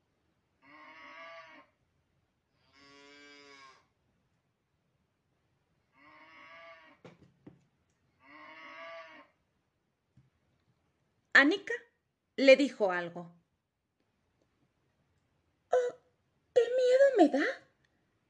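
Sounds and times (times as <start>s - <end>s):
cow mooing by a fence: 0.6s - 1.6s, 2.7s - 3.8s, 6.0s - 7.0s, 8.2s - 9.3s
speech: 11.4s - 13.4s, 17.2s - 17.6s.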